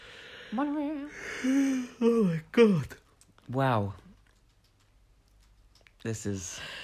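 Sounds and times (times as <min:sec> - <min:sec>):
speech: 0:00.5 - 0:04.0, 0:06.0 - 0:06.8
person yawning aloud: 0:01.1 - 0:02.5.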